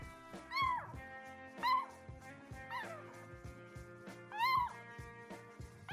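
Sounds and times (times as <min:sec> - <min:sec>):
cat giving squeaky high meows: 0:00.4 - 0:01.0, 0:01.6 - 0:01.9, 0:02.7 - 0:03.1, 0:04.3 - 0:04.8.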